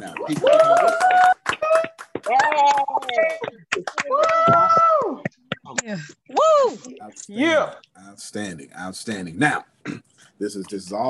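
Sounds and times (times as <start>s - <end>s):
speech: 0.0s - 1.2s, 7.3s - 9.7s, 10.4s - 11.0s
small group clapping over unmuted microphones: 0.0s - 5.9s
voices whooping and cheering: 0.2s - 3.4s, 4.0s - 5.3s.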